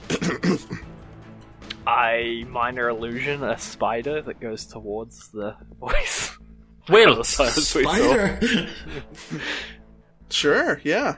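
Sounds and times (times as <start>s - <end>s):
voice imitating coughing: 0.0s - 0.9s
speech: 0.3s - 0.9s, 1.9s - 6.3s, 6.9s - 9.7s, 10.3s - 11.1s
laughter: 7.7s - 9.7s.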